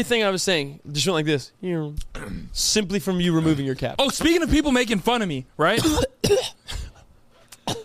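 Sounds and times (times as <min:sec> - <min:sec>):
speech: 0:00.0 - 0:06.6
short breathy coughs: 0:05.7 - 0:07.0, 0:07.6 - 0:07.8.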